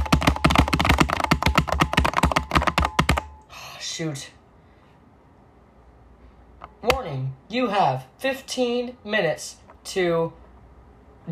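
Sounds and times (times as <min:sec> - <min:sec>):
key taps typing a passcode on a keypad: 0:00.0 - 0:03.4
speech: 0:04.0 - 0:04.4, 0:06.8 - 0:10.4.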